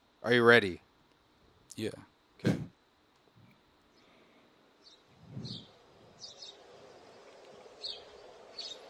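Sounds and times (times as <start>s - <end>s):
speech: 0.2s - 0.8s, 1.8s - 2.7s
bird chirping: 4.8s - 8.8s.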